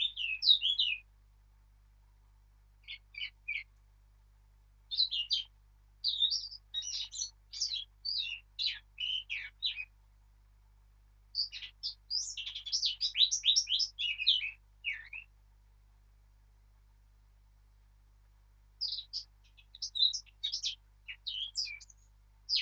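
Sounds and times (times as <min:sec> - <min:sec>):
Eurasian blackcap song: 0:00.0 - 0:01.0, 0:02.8 - 0:03.7, 0:04.9 - 0:09.9, 0:11.4 - 0:15.3, 0:18.8 - 0:22.6.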